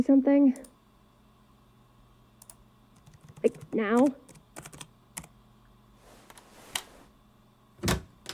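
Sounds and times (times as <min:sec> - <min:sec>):
speech: 0:00.0 - 0:00.7, 0:03.4 - 0:04.3
sharp metallic clicks and rattles from a door lock: 0:07.8 - 0:08.3.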